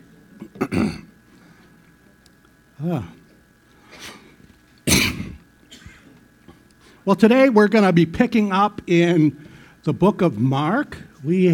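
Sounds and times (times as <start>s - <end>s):
person clearing throat with a communion wafer caught in it: 0.4s - 1.1s, 4.9s - 6.2s
person coughing with a communion wafer caught in the throat: 0.5s - 1.1s, 4.9s - 6.2s
speech: 2.8s - 3.2s, 7.1s - 11.5s.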